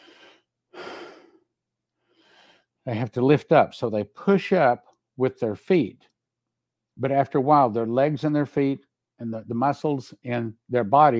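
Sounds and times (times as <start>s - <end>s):
person imitating the gasping breath of a suffocating person: 0.0s - 1.4s
speech: 2.8s - 6.1s, 7.0s - 11.1s.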